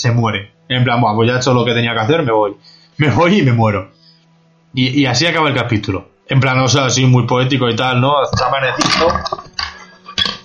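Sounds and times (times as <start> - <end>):
speech: 0.0 - 4.0, 4.7 - 9.7
microphone dropping and clattering against a hard surface: 8.3 - 10.4.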